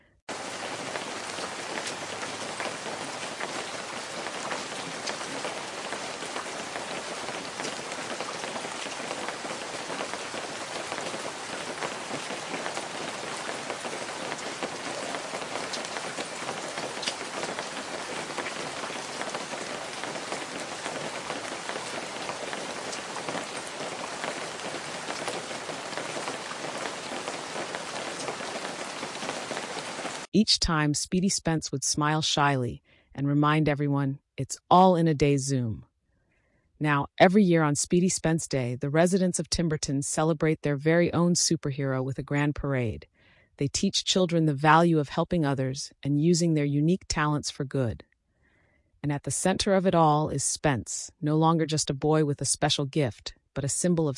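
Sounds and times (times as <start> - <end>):
heavy rain downpour drumming on a surface: 0.3 - 30.3
speech: 30.4 - 35.9, 36.8 - 48.1, 49.0 - 54.1.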